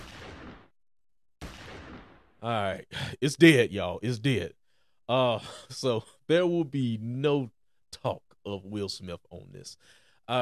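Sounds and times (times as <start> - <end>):
gunshot sound effect: 0.0 - 0.7, 1.4 - 2.4
speech: 2.4 - 10.4.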